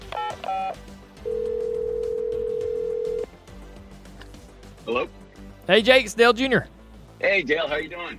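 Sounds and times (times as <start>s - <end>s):
telephone ringing tone on the line: 0.2s - 3.3s
speech: 5.7s - 6.7s, 7.3s - 8.1s.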